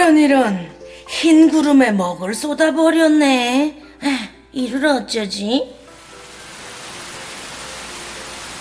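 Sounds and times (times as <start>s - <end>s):
speech: 0.1s - 5.8s
heavy rain pouring down in Seoul: 5.8s - 8.5s.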